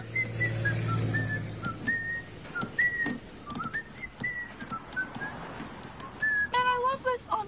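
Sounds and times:
man on a bus whistling a bouncy cheerful tune: 0:00.0 - 0:06.6
low engine-like rumble: 0:00.0 - 0:07.4
hands tapping on a bus seat: 0:01.5 - 0:06.4.

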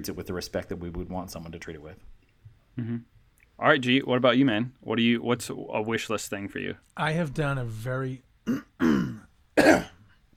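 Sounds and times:
speech: 0:00.0 - 0:02.2, 0:02.8 - 0:10.0
person coughing: 0:08.5 - 0:10.1.

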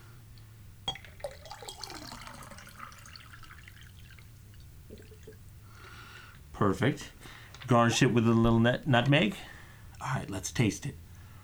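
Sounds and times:
low hum: 0:00.0 - 0:11.4
cocktail poured into pint glass through ice strainer: 0:00.3 - 0:06.5
sharp clink of pint glass: 0:00.9 - 0:03.9
speech: 0:06.6 - 0:11.0.

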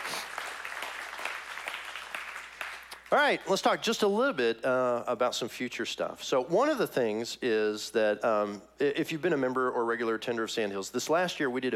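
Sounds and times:
audience applauding: 0:00.0 - 0:03.2
speech: 0:03.1 - 0:11.7.

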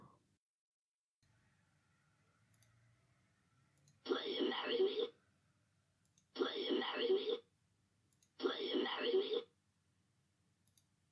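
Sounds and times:
synthesized monkey-like voice speaking: 0:04.0 - 0:05.2, 0:06.3 - 0:07.5, 0:08.4 - 0:09.5.

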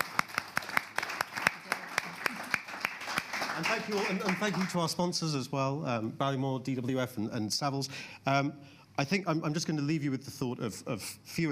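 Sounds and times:
single person clapping steadily: 0:00.0 - 0:04.7
speech: 0:03.6 - 0:11.5.

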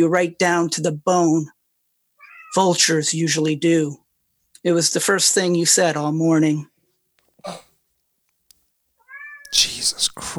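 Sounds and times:
speech: 0:00.0 - 0:01.6, 0:02.5 - 0:04.0, 0:04.6 - 0:06.7, 0:07.4 - 0:07.6, 0:09.5 - 0:10.3
cat meowing: 0:02.2 - 0:02.8, 0:09.0 - 0:10.3.

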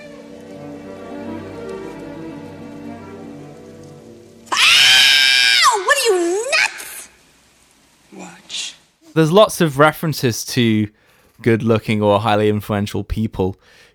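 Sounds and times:
low steady sound: 0:00.0 - 0:13.9
woman screaming after having her finger pricked: 0:04.5 - 0:07.1
speech: 0:09.2 - 0:13.9.

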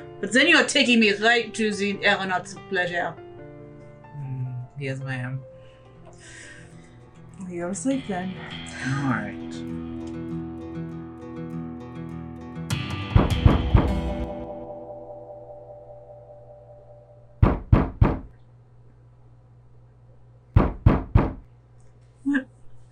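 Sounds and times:
speech: 0:00.2 - 0:03.2, 0:04.8 - 0:05.5, 0:07.4 - 0:09.9
knocking on a wall: 0:13.2 - 0:14.1, 0:17.4 - 0:18.3, 0:20.6 - 0:21.4.

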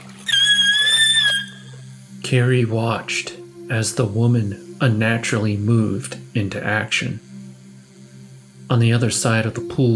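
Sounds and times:
woman's shrill screech: 0:00.0 - 0:01.8
speech: 0:02.2 - 0:07.3, 0:08.7 - 0:09.9.

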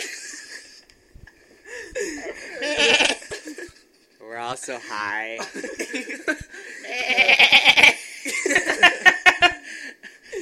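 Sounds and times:
laughter: 0:00.0 - 0:00.8, 0:01.7 - 0:04.1, 0:05.4 - 0:10.3
hissy noisy background: 0:00.0 - 0:10.3
sheep bleating: 0:02.6 - 0:03.2, 0:06.8 - 0:08.0
speech: 0:04.5 - 0:07.4.

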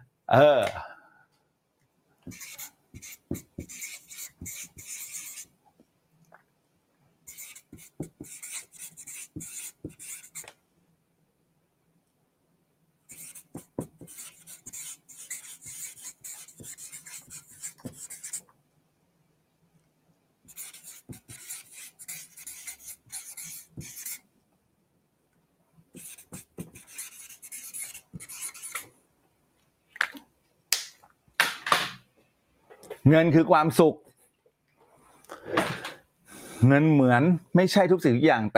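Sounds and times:
speech: 0:00.3 - 0:00.9, 0:33.1 - 0:34.0, 0:36.6 - 0:38.5
pen scratching on paper drawing a triangle: 0:02.3 - 0:05.5, 0:07.3 - 0:10.5, 0:13.1 - 0:18.4, 0:20.5 - 0:24.2, 0:25.9 - 0:28.9.

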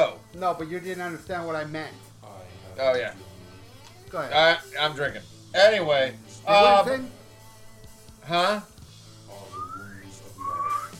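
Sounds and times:
speech: 0:00.0 - 0:02.1, 0:02.8 - 0:03.3, 0:04.1 - 0:07.2, 0:08.2 - 0:08.7
person whistling two short notes: 0:09.4 - 0:10.9.

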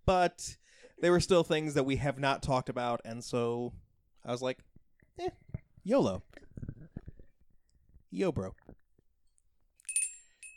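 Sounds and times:
speech: 0:00.1 - 0:06.4, 0:08.1 - 0:08.7
bright metallic bell ringing: 0:09.8 - 0:10.5.

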